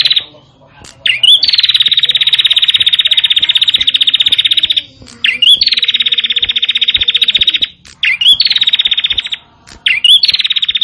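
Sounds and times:
prinia trilling: 0:00.0 - 0:10.8.

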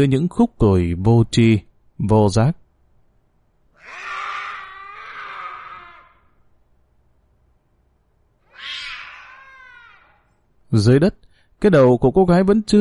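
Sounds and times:
speech: 0:00.0 - 0:02.6, 0:10.7 - 0:12.8
black cat snarling and yowling: 0:03.7 - 0:06.4, 0:08.4 - 0:10.4.

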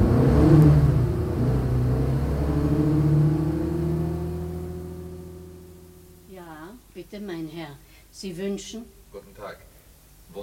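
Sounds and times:
car driving off toward Rue de Rivoli in Paris: 0:00.0 - 0:06.3
speech: 0:07.1 - 0:09.7.

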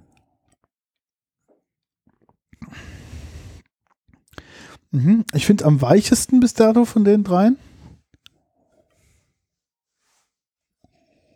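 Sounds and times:
person sipping bottled water to taste it: 0:02.0 - 0:02.7
speech: 0:04.9 - 0:07.7.

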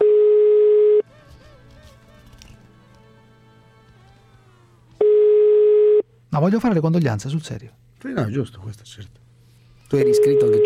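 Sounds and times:
telephone line tone while placing a call: 0:00.0 - 0:01.0, 0:05.0 - 0:06.1, 0:10.0 - 0:10.6
speech: 0:06.4 - 0:09.3, 0:09.9 - 0:10.6.

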